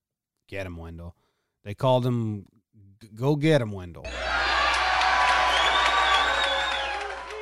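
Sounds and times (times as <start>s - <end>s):
speech: 0.5s - 4.3s
large crowd cheering at a political rally: 4.1s - 7.3s
people shouting at a political rally: 4.1s - 7.3s.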